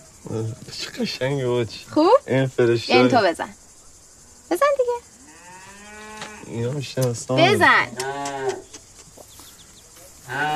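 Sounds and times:
speech: 0:00.2 - 0:03.6, 0:04.5 - 0:05.1, 0:06.5 - 0:08.6
cow mooing: 0:05.3 - 0:06.6, 0:07.5 - 0:08.7, 0:10.2 - 0:10.5.

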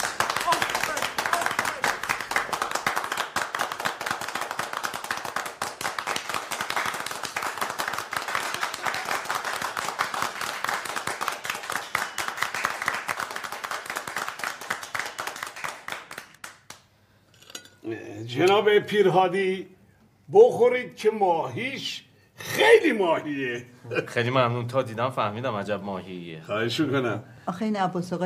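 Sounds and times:
small group clapping: 0:00.0 - 0:17.1
speech: 0:18.3 - 0:19.7, 0:20.3 - 0:28.2.

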